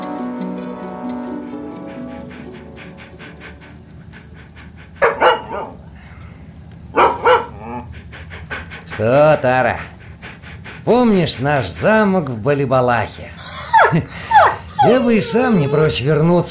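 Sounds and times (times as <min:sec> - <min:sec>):
large dog barking: 0:05.0 - 0:05.8, 0:06.9 - 0:08.1, 0:13.4 - 0:16.4
speech: 0:09.0 - 0:09.9, 0:10.8 - 0:14.2, 0:14.8 - 0:16.4.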